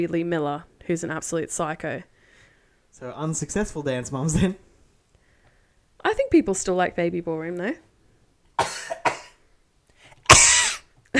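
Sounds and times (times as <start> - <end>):
speech: 0.0 - 2.1, 2.9 - 4.6, 6.0 - 7.9
person coughing: 8.6 - 9.4, 10.3 - 10.9.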